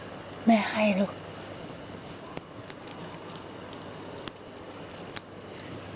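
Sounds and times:
speech: 0:00.4 - 0:01.2
coins clinking as a child counts them: 0:02.2 - 0:05.6.

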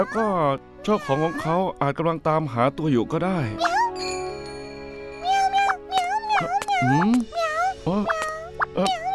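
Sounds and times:
speech: 0:00.0 - 0:03.8, 0:06.4 - 0:08.9
hungry kitten meowing: 0:05.3 - 0:09.1
person murmuring: 0:06.4 - 0:08.2.

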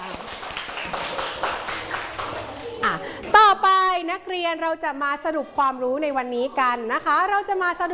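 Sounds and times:
room full of children clapping: 0:00.0 - 0:03.0
faint murmur of voices: 0:00.0 - 0:07.9
speech: 0:04.0 - 0:07.9.

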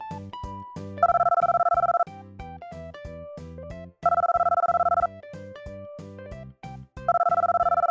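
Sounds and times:
light bouncy music: 0:00.0 - 0:07.8
telephone call ringing in electronic bursts: 0:01.0 - 0:02.1, 0:04.0 - 0:05.1, 0:07.1 - 0:07.8.

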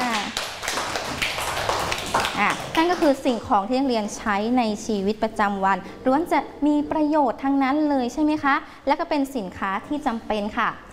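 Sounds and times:
students clapping in a classroom: 0:00.0 - 0:03.5
speech: 0:02.4 - 0:10.8.

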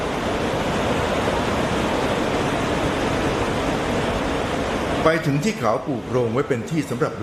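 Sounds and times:
large waterfall rushing water: 0:00.0 - 0:07.2
speech: 0:05.0 - 0:07.2.

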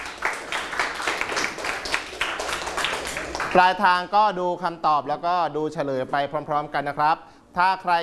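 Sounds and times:
group clapping in a classroom: 0:00.0 - 0:03.9
speech: 0:03.6 - 0:08.0.

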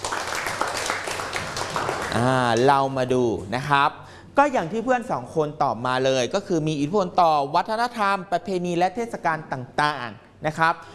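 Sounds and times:
class of students clapping for a classmate: 0:00.0 - 0:02.8
speech: 0:02.2 - 0:10.9.

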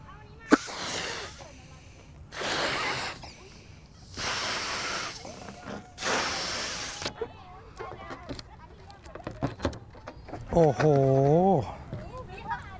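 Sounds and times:
person blowing out breath in a science demonstration: 0:00.5 - 0:01.6, 0:02.3 - 0:07.1
speech: 0:10.6 - 0:11.8.

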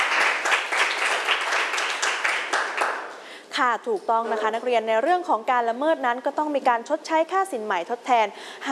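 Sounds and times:
students clapping in a classroom: 0:00.0 - 0:03.2
speech: 0:03.6 - 0:08.6.

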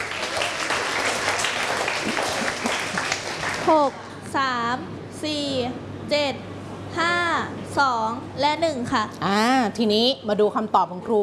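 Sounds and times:
room full of people clapping for a student in a classroom: 0:00.0 - 0:04.2
speech: 0:03.7 - 0:11.2.

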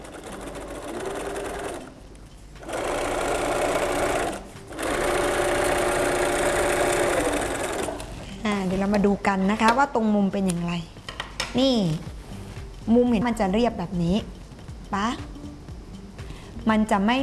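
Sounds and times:
sewing machine stitching thick fabric: 0:00.0 - 0:02.0, 0:02.6 - 0:08.1
speech: 0:08.5 - 0:12.1, 0:12.8 - 0:15.3, 0:16.7 - 0:17.2.

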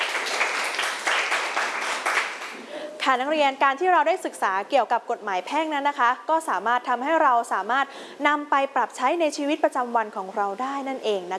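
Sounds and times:
students in a classroom clapping for a classmate: 0:00.0 - 0:02.7
speech: 0:03.1 - 0:11.3.

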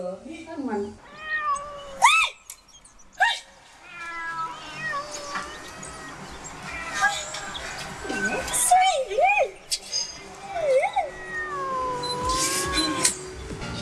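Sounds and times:
speech: 0:00.0 - 0:01.1
several cats meowing: 0:01.0 - 0:02.3, 0:03.7 - 0:08.6, 0:10.4 - 0:13.3.

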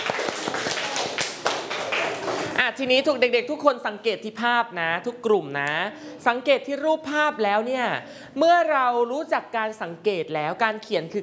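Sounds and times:
children clapping for a classmate in a classroom: 0:00.0 - 0:02.6
speech: 0:02.8 - 0:11.2.

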